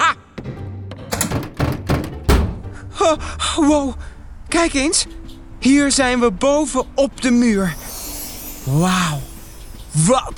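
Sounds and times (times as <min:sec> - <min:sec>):
heavy door leading outside thudding: 0:00.9 - 0:02.7
speech: 0:03.1 - 0:07.8, 0:08.6 - 0:09.3, 0:10.0 - 0:10.3.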